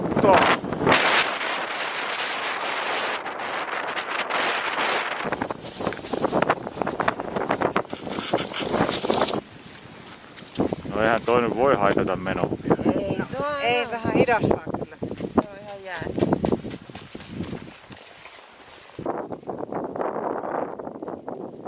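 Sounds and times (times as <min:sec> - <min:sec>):
strong cold wind over snow and ice in Greenland: 0:00.0 - 0:18.0, 0:18.9 - 0:21.6
speech: 0:11.3 - 0:12.8, 0:13.6 - 0:14.7.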